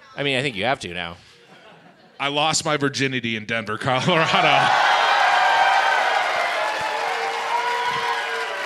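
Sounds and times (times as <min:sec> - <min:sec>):
speech: 0:00.2 - 0:01.3, 0:02.2 - 0:04.9
laughter: 0:01.4 - 0:02.4, 0:04.1 - 0:05.1
scattered whoops and shouts: 0:04.3 - 0:08.6
large audience clapping: 0:04.4 - 0:08.6.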